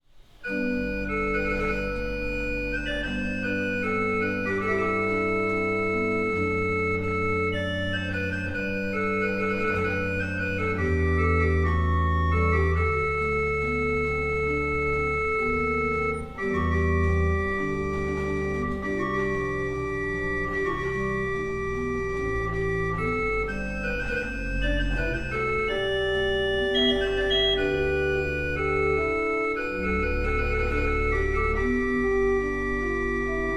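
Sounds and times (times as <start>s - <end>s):
pipe organ with Bourdon 8 Sesquialtera Gemshorn 8 and Sousbasse 16 stops: 0.2s - 33.5s.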